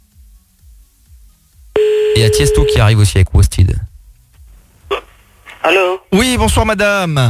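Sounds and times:
telephone line tone while calling back a dropped call: 0:01.8 - 0:02.8
speech: 0:02.2 - 0:03.9, 0:05.7 - 0:07.2.

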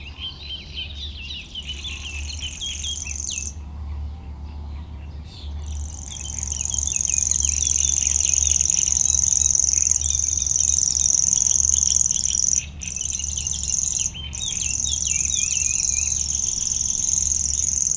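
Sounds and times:
small birds chattering and whistling: 0:00.3 - 0:04.1, 0:04.7 - 0:17.9
Common Grasshopper Warbler reeling in a reedbed: 0:06.0 - 0:17.9.

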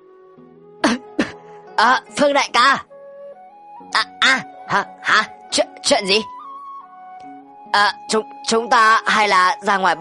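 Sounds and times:
dry coughs: 0:00.8 - 0:01.4
speech: 0:01.8 - 0:02.9, 0:03.8 - 0:06.4, 0:07.7 - 0:09.9.

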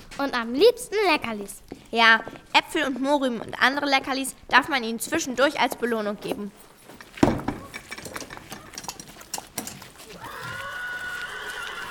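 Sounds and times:
speech: 0:00.2 - 0:06.7
knocks and clatter: 0:05.7 - 0:10.0
white horse whinnying while being groomed in a yard: 0:10.0 - 0:11.8.

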